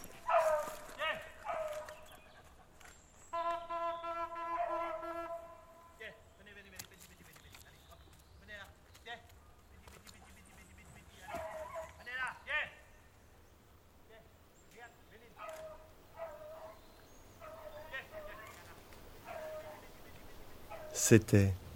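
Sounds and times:
pack of hunting dogs barking and yipping: 0:00.0 - 0:03.0, 0:10.1 - 0:12.2, 0:15.4 - 0:21.0
steady outdoor noise: 0:00.0 - 0:21.7
speech: 0:21.1 - 0:21.6.

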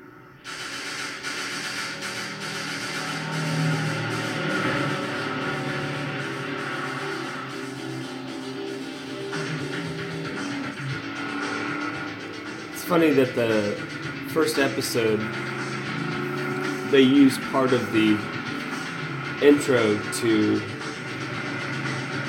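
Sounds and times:
160-horsepower Chevy Camaro roaring in a chase scene: 0:00.0 - 0:22.2
speech: 0:12.9 - 0:15.5, 0:16.9 - 0:18.4, 0:19.4 - 0:20.7.

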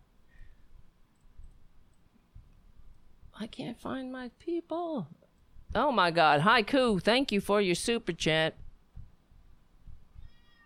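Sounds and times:
speech: 0:03.4 - 0:08.6
cat meowing loudly: 0:10.2 - 0:10.6.

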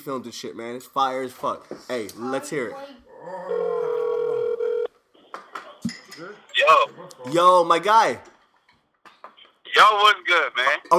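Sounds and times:
speech: 0:00.0 - 0:03.7, 0:06.2 - 0:08.3, 0:09.8 - 0:10.9
telephone dialing a call: 0:03.8 - 0:04.9.

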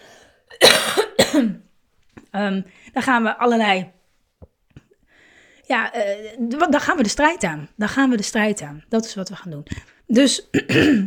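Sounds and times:
forceful coughs: 0:00.5 - 0:01.7, 0:10.5 - 0:11.0
speech: 0:01.3 - 0:01.7, 0:02.3 - 0:04.0, 0:05.7 - 0:11.0.

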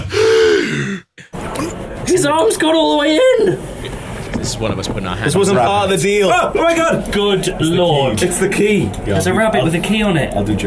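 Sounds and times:
sharp gasp of surprise: 0:00.0 - 0:01.0
speech: 0:02.1 - 0:10.6.

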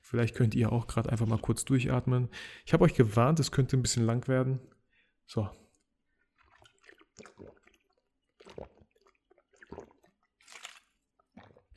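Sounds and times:
speech: 0:00.1 - 0:05.6
person sipping and swallowing water: 0:05.6 - 0:11.7.

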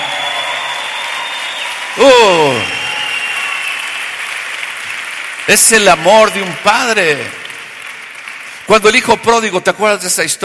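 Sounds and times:
crowd applauding: 0:00.0 - 0:10.4
man exclaiming: 0:02.0 - 0:02.8
speech: 0:02.0 - 0:02.8, 0:05.5 - 0:07.4, 0:08.7 - 0:10.4.

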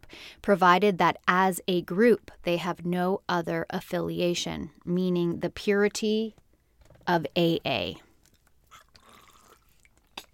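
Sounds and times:
speech: 0:00.1 - 0:06.4, 0:07.1 - 0:08.0
person sipping water: 0:08.1 - 0:10.3
swallowing: 0:08.2 - 0:10.3.

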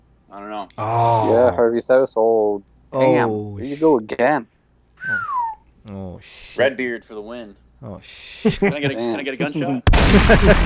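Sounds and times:
speech: 0:00.3 - 0:04.5, 0:05.8 - 0:10.6
gunshot sound effect: 0:09.9 - 0:10.6.

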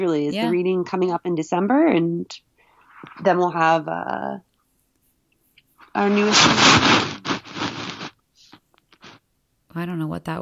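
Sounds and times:
speech: 0:00.0 - 0:04.5, 0:06.0 - 0:07.2, 0:09.8 - 0:10.3
paper shuffling and rustling: 0:05.8 - 0:08.1.

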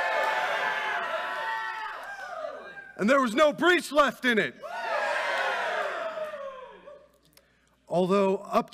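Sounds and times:
several voices cheering and shouting together: 0:00.0 - 0:03.0, 0:04.6 - 0:07.1
speech: 0:03.0 - 0:04.7, 0:07.9 - 0:08.7.

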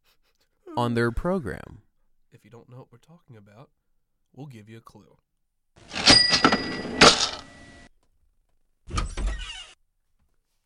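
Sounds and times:
AOL Instant Messenger alert sounds: 0:00.7 - 0:01.7
speech: 0:00.8 - 0:06.0, 0:06.6 - 0:07.4
door open-and-effects: 0:08.9 - 0:09.8.

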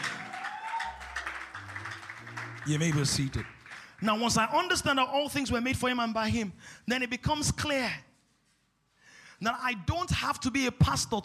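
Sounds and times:
audience clapping hands in praise: 0:00.0 - 0:04.8
sustained low musical notes shifting in pitch: 0:01.3 - 0:03.7
speech: 0:02.6 - 0:08.1, 0:09.4 - 0:11.2.

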